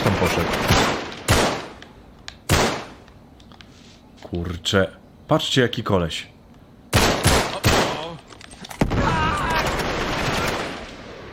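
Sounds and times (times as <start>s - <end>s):
burst of loud sharp gunshots: 0.0s - 1.8s, 2.5s - 3.0s, 6.9s - 8.1s, 8.8s - 11.3s
steady rumbling noise: 0.0s - 11.3s
speech: 0.2s - 0.8s, 4.3s - 6.4s.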